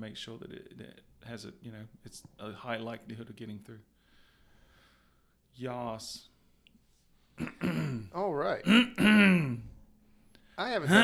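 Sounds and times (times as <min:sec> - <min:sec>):
speech: 0:00.0 - 0:04.0, 0:05.6 - 0:06.3, 0:07.4 - 0:09.7, 0:10.6 - 0:11.0
voiced throat clearing: 0:07.4 - 0:09.8.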